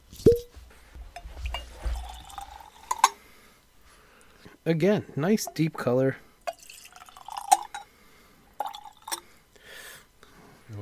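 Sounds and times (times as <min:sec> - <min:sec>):
Glencairn glass clink: 0:01.2 - 0:03.2, 0:06.5 - 0:07.9, 0:08.6 - 0:09.2
whisky gurgling as it is poured into a Glencairn glass: 0:01.4 - 0:03.2, 0:06.5 - 0:07.9, 0:08.5 - 0:09.3
speech: 0:04.6 - 0:06.2.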